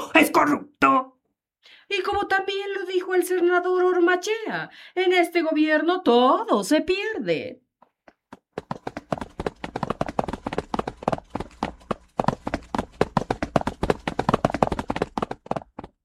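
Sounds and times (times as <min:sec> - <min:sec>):
speech: 0:00.2 - 0:01.0, 0:01.9 - 0:07.6
heavy footsteps of several people running away: 0:08.1 - 0:16.0.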